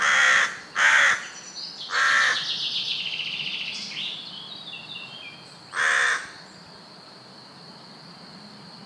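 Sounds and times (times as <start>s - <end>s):
Carrion crow giving harsh hoarse caws: 0.0s - 1.3s, 1.9s - 2.4s, 5.7s - 6.4s
thin twittering songbird singing high: 1.0s - 6.6s.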